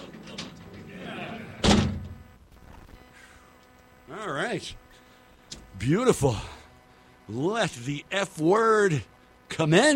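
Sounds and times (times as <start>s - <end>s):
heavy door slamming shut: 1.6s - 2.2s
speech: 4.1s - 4.8s, 5.8s - 6.5s, 7.3s - 9.9s.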